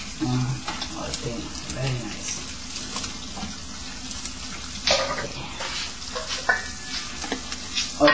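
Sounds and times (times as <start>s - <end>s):
food seasoned with salt and apple sauce simmering in a pan: 0.0s - 8.1s
stirring scrapes in a pan: 2.2s - 8.1s.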